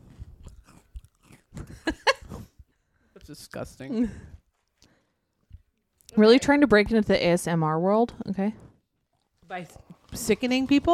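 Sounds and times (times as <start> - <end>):
wet chewing and crunching of a salted cream-filled cookie into a microphone: 0.0 - 2.5, 8.6 - 10.9
speech: 3.3 - 4.3, 6.2 - 8.6, 9.5 - 10.9.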